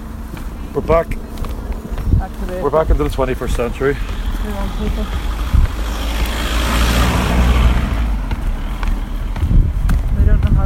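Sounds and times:
single car passing on a quiet road: 0:00.0 - 0:10.2
wind noise: 0:00.0 - 0:10.6
speech: 0:00.8 - 0:01.3, 0:02.2 - 0:05.3.

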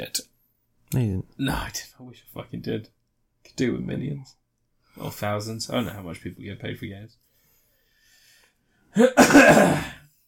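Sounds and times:
speech: 0:00.0 - 0:00.3, 0:00.9 - 0:04.4, 0:05.0 - 0:07.2, 0:08.9 - 0:10.0
person coughing: 0:09.0 - 0:10.0.

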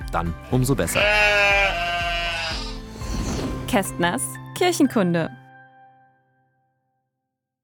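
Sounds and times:
speech: 0:00.1 - 0:01.9, 0:03.7 - 0:05.4
sheep bleating: 0:00.8 - 0:02.8.

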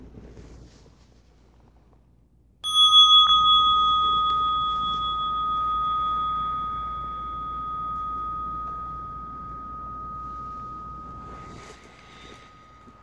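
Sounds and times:
meditation bell ringing: 0:02.6 - 0:13.0.

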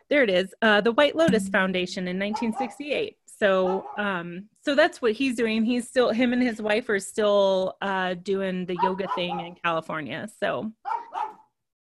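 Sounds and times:
speech: 0:00.1 - 0:11.3
dog barking: 0:03.6 - 0:04.0, 0:08.8 - 0:09.6, 0:10.8 - 0:11.5
dog yelping: 0:08.8 - 0:09.5, 0:10.8 - 0:11.5.

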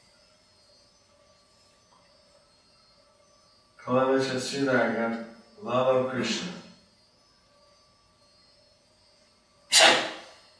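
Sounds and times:
speech: 0:03.9 - 0:06.6
person sneezing: 0:09.7 - 0:10.3.

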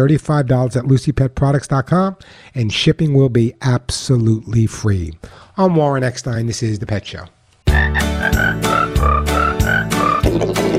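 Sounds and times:
speech: 0:00.0 - 0:08.8
cricket chirps strung into a bouncy holiday tune: 0:07.7 - 0:10.3.

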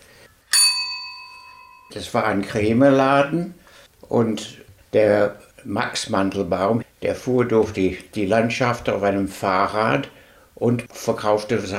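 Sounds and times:
old bell strike: 0:00.5 - 0:02.0
speech: 0:01.9 - 0:11.7.

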